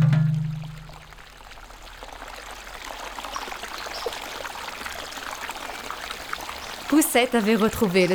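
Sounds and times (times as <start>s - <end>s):
low hum: 0.0s - 1.2s
river water flowing: 0.0s - 8.1s
speech: 7.1s - 8.1s.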